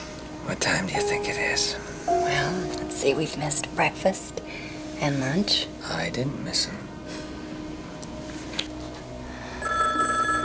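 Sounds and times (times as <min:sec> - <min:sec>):
speech: 0:00.5 - 0:06.8
telephone ringing with a metallic buzzing tone: 0:09.6 - 0:10.4.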